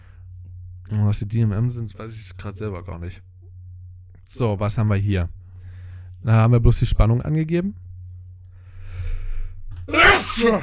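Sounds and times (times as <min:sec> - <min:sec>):
low hum: 0:00.0 - 0:10.6
speech: 0:00.9 - 0:03.3, 0:04.3 - 0:05.4, 0:06.2 - 0:07.8, 0:09.9 - 0:10.6
voiced exhale: 0:08.6 - 0:09.6
sneeze: 0:09.9 - 0:10.6.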